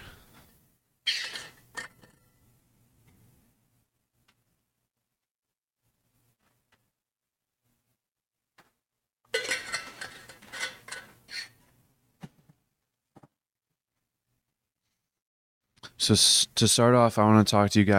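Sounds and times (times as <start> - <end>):
glassware clinking as someone gets a glass of water: 9.3 - 11.4
speech: 16.0 - 17.9.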